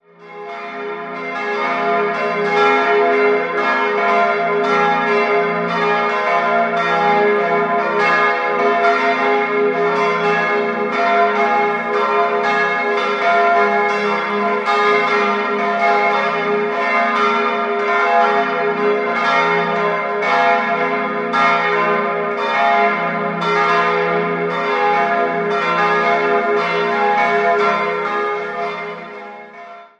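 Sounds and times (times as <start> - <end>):
church bells ringing: 0.0 - 29.9.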